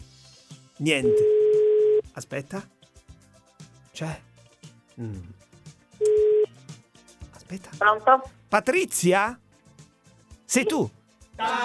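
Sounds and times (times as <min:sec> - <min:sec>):
speech: 0:00.8 - 0:01.4, 0:02.2 - 0:02.8, 0:04.0 - 0:04.3, 0:05.0 - 0:05.4, 0:07.5 - 0:09.4, 0:10.5 - 0:11.6
telephone ringback tone on an Italian line: 0:01.1 - 0:02.0, 0:06.0 - 0:06.5.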